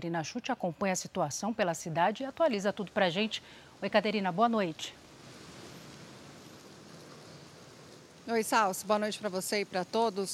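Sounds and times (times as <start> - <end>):
speech: 0.0 - 5.0, 8.3 - 10.3
light rain falling outdoors: 0.0 - 10.3.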